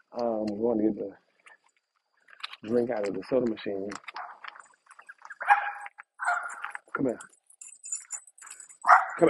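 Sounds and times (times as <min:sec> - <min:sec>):
speech: 0:00.2 - 0:01.3, 0:02.6 - 0:04.2, 0:07.0 - 0:07.4
Jack Russell terrier barking and yapping at deer outdoors: 0:05.4 - 0:06.6, 0:08.8 - 0:09.2.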